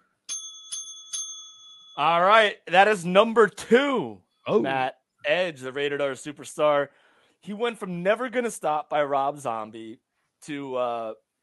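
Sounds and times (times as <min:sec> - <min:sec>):
bright metallic bell ringing for a correct answer: 0:00.3 - 0:02.2
speech: 0:02.0 - 0:11.2.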